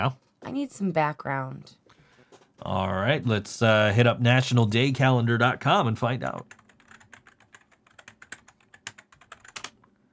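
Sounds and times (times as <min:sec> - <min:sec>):
speech: 0:00.0 - 0:01.8, 0:02.6 - 0:06.6
loud clacking on a computer keyboard: 0:06.3 - 0:09.8.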